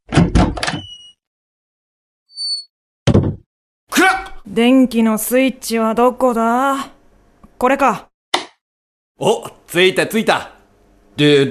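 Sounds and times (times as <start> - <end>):
heavy rattling clunks of a door being pushed open: 0.0 - 0.8
door creak or squeal: 0.0 - 1.2
speech: 4.5 - 7.0, 7.6 - 8.1, 9.2 - 10.6, 11.2 - 11.4.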